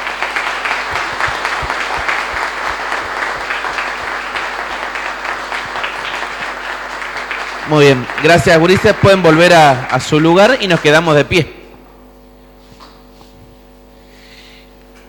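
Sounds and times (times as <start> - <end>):
audience applauding: 0.0 - 11.8
speech: 7.7 - 11.6.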